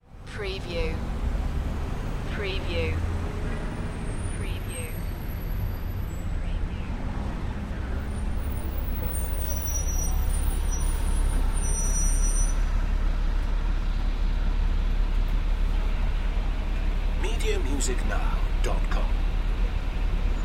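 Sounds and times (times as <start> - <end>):
background traffic: 0.0 - 20.4.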